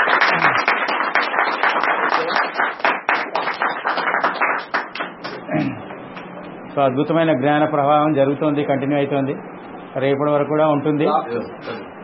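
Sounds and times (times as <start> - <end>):
class of people clapping hands together: 0.0 - 6.3
speech: 6.8 - 11.7.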